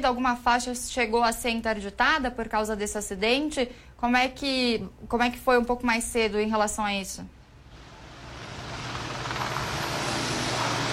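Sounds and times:
speech: 0:00.0 - 0:07.4
helicopter hovering overhead with rotor thump: 0:07.6 - 0:10.9.

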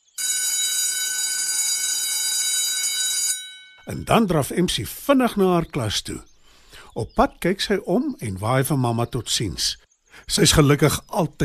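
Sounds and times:
electric school bell ringing: 0:00.1 - 0:03.9
speech: 0:03.9 - 0:06.3, 0:07.0 - 0:11.4.

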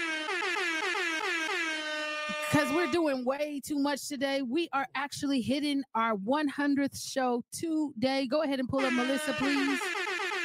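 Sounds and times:
brassy hype-style air horn effect blasts: 0:00.0 - 0:03.2, 0:08.8 - 0:10.4
speech: 0:02.5 - 0:10.0.

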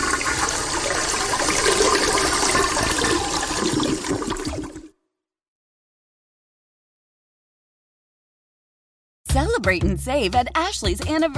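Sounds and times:
toilet flushing: 0:00.0 - 0:04.9
speech: 0:09.6 - 0:11.3.

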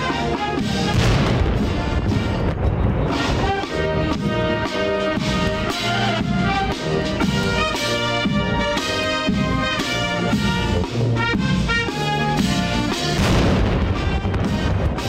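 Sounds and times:
brass band music: 0:00.0 - 0:15.0
cannon salute booms: 0:00.9 - 0:02.9, 0:13.2 - 0:15.0.

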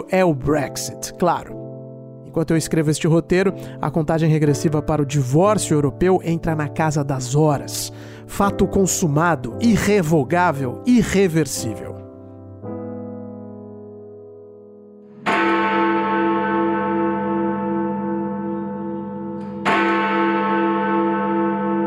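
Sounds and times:
speech: 0:00.0 - 0:01.6, 0:02.3 - 0:12.0
Big Ben clock tower bell strikes in London: 0:15.1 - 0:21.7
softer bell tone: 0:15.3 - 0:20.4.

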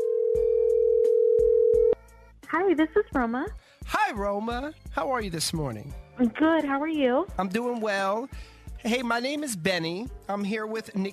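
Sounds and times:
telephone dial tone as a phone call is placed: 0:00.0 - 0:02.0
speech: 0:02.5 - 0:11.1.

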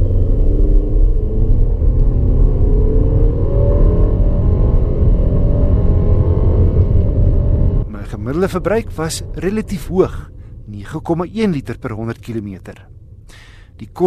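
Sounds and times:
SUV engine revving under load: 0:00.0 - 0:10.3
speech: 0:08.4 - 0:14.0.

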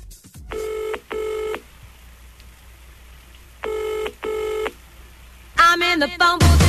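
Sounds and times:
telephone ringback tone heard by caller: 0:00.5 - 0:01.7, 0:03.6 - 0:04.8
speech: 0:05.9 - 0:06.6.

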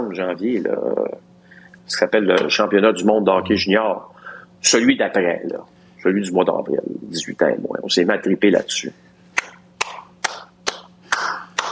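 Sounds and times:
faint low hum: 0:00.0 - 0:11.7
speech: 0:00.1 - 0:09.1
sharp hand claps in a small room: 0:09.4 - 0:11.7.

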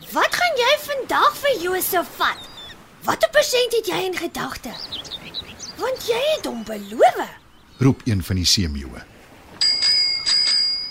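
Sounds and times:
speech: 0:01.1 - 0:05.2, 0:05.8 - 0:09.1
bicycle bell ringing: 0:09.6 - 0:10.8.

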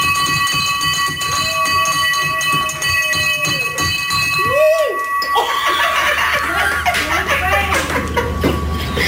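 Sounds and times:
cancer bell ringing: 0:00.0 - 0:09.0
people cheering: 0:00.8 - 0:08.2
people laughing: 0:05.3 - 0:09.0.

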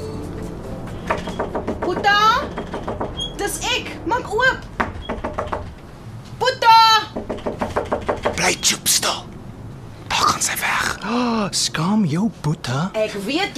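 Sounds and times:
knocking on a door: 0:01.0 - 0:03.5, 0:04.7 - 0:05.7, 0:07.1 - 0:08.5
people talking: 0:01.8 - 0:02.5, 0:03.4 - 0:04.7, 0:08.3 - 0:09.3, 0:10.1 - 0:13.5.

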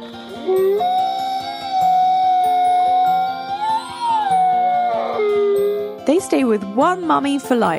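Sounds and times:
soft music: 0:00.0 - 0:07.7
arctic wolf howling: 0:00.3 - 0:06.0
speech: 0:06.2 - 0:07.7.

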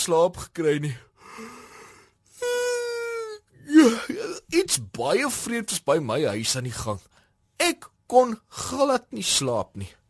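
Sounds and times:
speech: 0:00.0 - 0:01.1, 0:03.7 - 0:10.0
loud human yawn with breathy inhale and falling voiced groan: 0:01.2 - 0:04.5.

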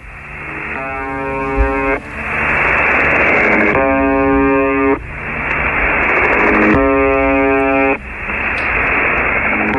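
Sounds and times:
crackling shortwave static: 0:00.0 - 0:09.7
shortwave ghost station harsh droning buzz tone: 0:00.0 - 0:09.7.

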